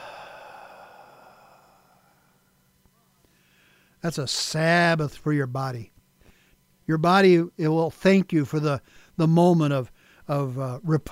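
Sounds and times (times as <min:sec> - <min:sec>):
slow exhale during a guided breathing exercise: 0:00.0 - 0:02.6, 0:03.2 - 0:04.0
speech: 0:04.0 - 0:05.9, 0:06.9 - 0:11.1.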